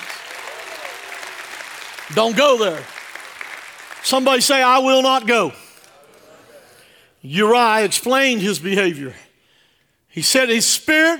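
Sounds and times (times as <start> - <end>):
audience clapping: 0.0 - 6.8
speech: 2.1 - 2.9, 4.0 - 5.6, 7.2 - 9.2, 10.1 - 11.1.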